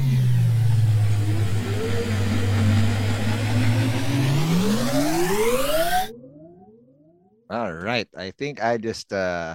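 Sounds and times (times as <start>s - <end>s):
engine-revving sound effect for a time machine ride: 0.0s - 6.1s
speech: 7.6s - 9.5s.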